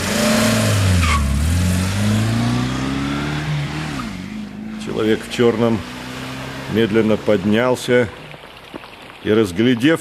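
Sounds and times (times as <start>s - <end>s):
car engine revving as it accelerates hard: 0.0s - 7.7s
car tire squeal: 0.5s - 1.5s
speech: 5.0s - 6.0s, 6.7s - 8.2s, 9.2s - 10.0s.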